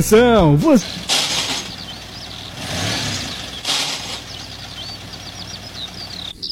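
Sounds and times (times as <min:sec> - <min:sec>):
speech: 0:00.0 - 0:01.2
car engine running while gears fail to engage: 0:00.6 - 0:06.4
loud noisy bursts over car engine: 0:00.7 - 0:06.3.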